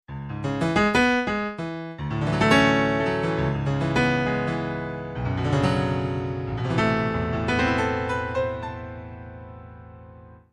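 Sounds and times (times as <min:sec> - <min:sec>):
bright grand piano: 0:00.1 - 0:10.5.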